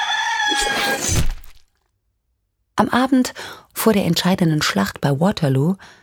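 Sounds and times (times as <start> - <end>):
chicken crowing: 0.0 - 0.6
speech: 0.6 - 1.3, 2.8 - 6.0.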